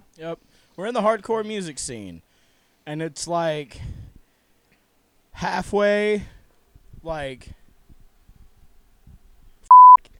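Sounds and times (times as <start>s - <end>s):
speech: 0.2s - 2.3s, 2.9s - 4.0s, 5.4s - 6.4s, 7.0s - 7.6s
electronic censor bleep tone: 9.7s - 10.0s.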